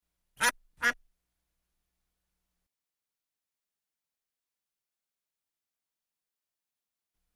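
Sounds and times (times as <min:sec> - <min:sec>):
duck quacking: 0:00.4 - 0:01.0.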